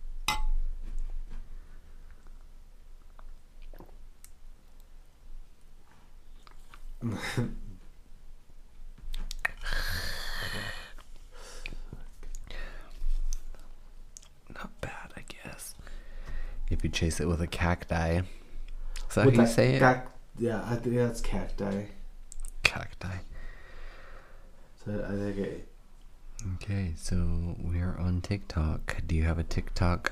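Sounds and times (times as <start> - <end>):
glasses of vodka shots clinking in a toast: 0.3 - 0.6
speech: 7.0 - 7.6, 17.0 - 18.4, 19.1 - 22.0, 22.8 - 23.3, 24.8 - 25.7, 26.4 - 30.1
whispering: 9.4 - 10.7, 14.5 - 15.8.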